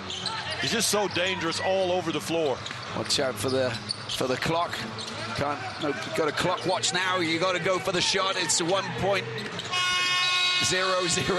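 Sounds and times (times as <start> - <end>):
speech: 0.6 - 9.8, 10.6 - 11.3
basketball end-of-quarter buzzer: 9.6 - 11.3.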